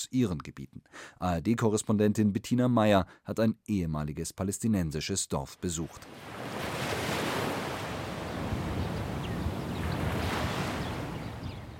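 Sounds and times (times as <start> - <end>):
speech: 0.0 - 6.8
gentle Mediterranean sea waves washing onto a sandy shore: 6.0 - 11.7
light wind rushing across the microphone: 6.5 - 11.7.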